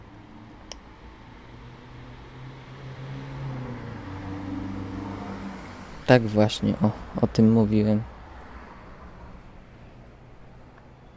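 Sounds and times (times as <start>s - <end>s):
vehicle passing with low engine drone: 0.0s - 11.0s
street traffic rumble: 0.0s - 11.1s
speech: 6.1s - 8.1s.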